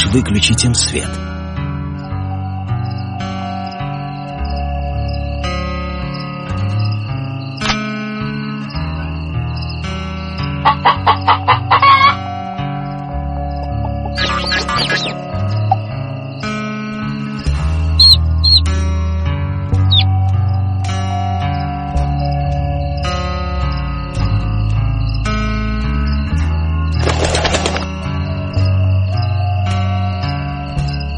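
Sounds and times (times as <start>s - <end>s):
steady gentle musical backdrop: 0.0s - 31.1s
speech: 0.1s - 1.4s
chickens clucking on a farm at night: 10.6s - 12.2s, 13.8s - 15.8s, 18.0s - 18.6s.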